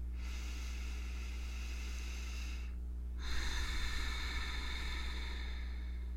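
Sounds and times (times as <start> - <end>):
long slow deep breath in a guided calming meditation: 0.0 - 6.1
steady low hum: 0.0 - 6.1.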